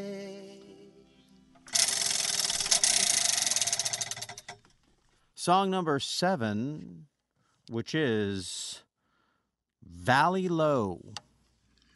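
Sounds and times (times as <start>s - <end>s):
prize wheel spinning with ratchet clicks: 1.6s - 4.7s
speech: 5.5s - 7.1s, 7.7s - 8.8s, 9.8s - 11.2s.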